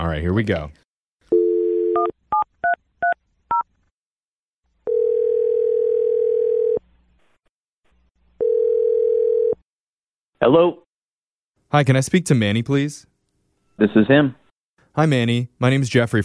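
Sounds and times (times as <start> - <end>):
speech: 0.1 - 0.8, 10.4 - 10.8, 11.7 - 13.1, 13.8 - 14.4, 15.0 - 16.2
telephone dial tone: 1.3 - 2.1, 4.8 - 6.8, 8.4 - 9.6.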